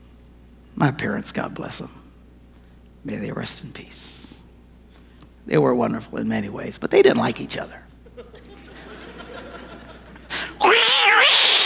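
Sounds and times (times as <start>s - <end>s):
speech: 0.8s - 2.0s, 3.0s - 4.4s, 5.5s - 7.8s
laughter: 8.0s - 10.6s
human voice imitating two cats fighting: 10.5s - 11.6s.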